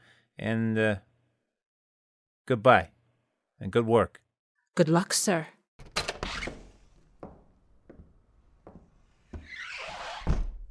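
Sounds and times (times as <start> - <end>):
speech: 0.4 - 1.1, 2.5 - 2.9, 3.6 - 4.2, 4.8 - 5.6
office door handled and pulled shut with sharp clicks: 5.8 - 7.6
slow evenly spaced footsteps walking away: 7.0 - 9.5.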